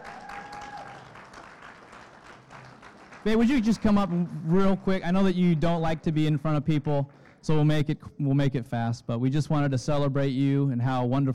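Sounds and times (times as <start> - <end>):
audience applauding for a birthday: 0.0 - 7.6
speech: 3.2 - 11.3.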